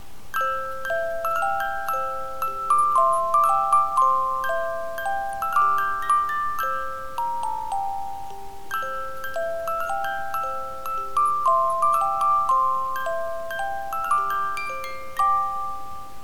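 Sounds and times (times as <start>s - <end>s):
music box melody: 0.0s - 16.2s.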